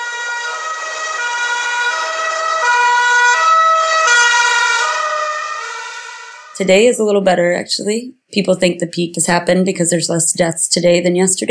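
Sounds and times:
ambulance siren wailing in a city street: 0:00.0 - 0:06.6
speech: 0:06.6 - 0:11.4.

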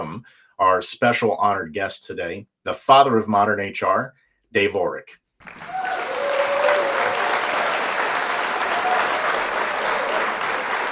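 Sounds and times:
speech: 0:00.0 - 0:05.9
faint whistles and cheers from crowd: 0:05.4 - 0:10.9
large crowd applauding: 0:05.4 - 0:10.9.

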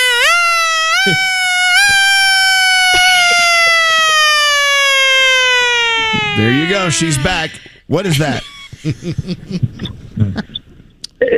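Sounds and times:
person imitating a wailing siren: 0:00.0 - 0:07.7
speech: 0:01.0 - 0:01.3, 0:06.4 - 0:10.5
laughter: 0:06.2 - 0:10.6.

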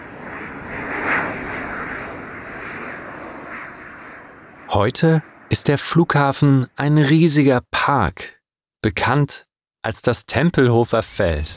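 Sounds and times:
airplane flying low overhead: 0:00.0 - 0:06.8
speech: 0:04.7 - 0:11.5.

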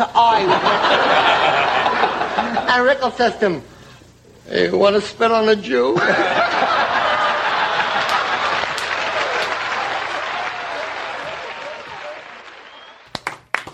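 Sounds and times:
speech: 0:00.0 - 0:01.8, 0:02.4 - 0:03.7, 0:04.5 - 0:06.8
laughter: 0:00.3 - 0:02.7, 0:06.0 - 0:12.4
audience applause at a comedy talk: 0:07.0 - 0:13.7.

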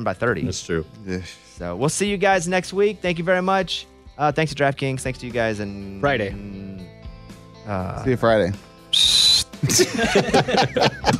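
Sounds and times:
speech: 0:00.0 - 0:07.0, 0:07.7 - 0:11.1
loud shrill whistle blast as sign-off sound effect: 0:08.9 - 0:09.6
several voices talking and chuckling: 0:09.6 - 0:11.1.

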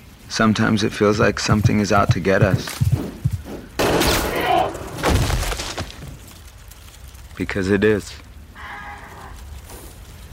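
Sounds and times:
speech: 0:00.4 - 0:03.3, 0:07.4 - 0:08.2
gunshot: 0:03.8 - 0:05.7.

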